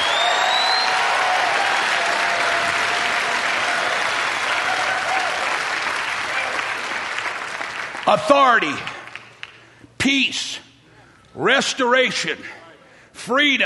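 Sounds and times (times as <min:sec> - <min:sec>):
church audience clapping as a clap offering: 0:00.0 - 0:09.8
speech: 0:08.1 - 0:08.9, 0:10.0 - 0:10.6, 0:11.4 - 0:12.6, 0:13.2 - 0:13.6.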